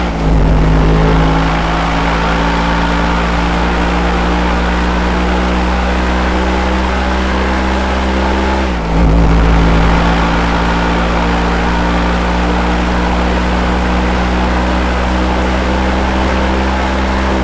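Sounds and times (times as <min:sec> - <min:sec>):
car engine cruising in fourth gear: 0:00.0 - 0:17.4.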